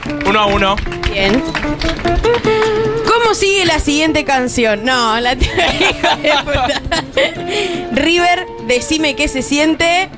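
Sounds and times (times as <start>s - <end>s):
applause with sharp hand claps: 0.0s - 4.2s
speech: 0.1s - 10.1s
laughter: 5.4s - 7.6s.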